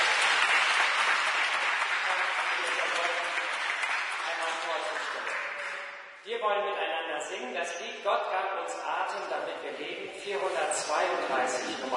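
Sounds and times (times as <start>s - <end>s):
audience clapping: 0.0s - 6.0s
speech: 6.4s - 11.9s.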